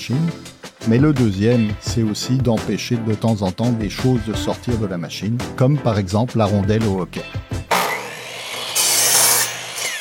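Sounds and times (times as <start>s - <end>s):
speech: 0.0s - 7.6s
miter saw cutting wood: 7.7s - 9.9s.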